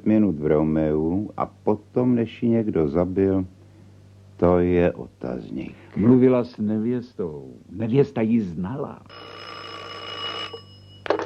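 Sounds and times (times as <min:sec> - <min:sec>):
speech: 0:00.0 - 0:03.6, 0:04.4 - 0:09.5
old telephone bell ringing for a long-distance call: 0:09.1 - 0:11.2.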